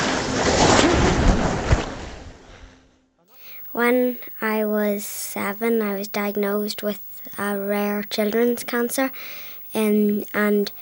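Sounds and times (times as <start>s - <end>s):
ocean surf breaking in North Donegal on a late summer night: 0.0s - 2.8s
speech: 3.8s - 10.7s.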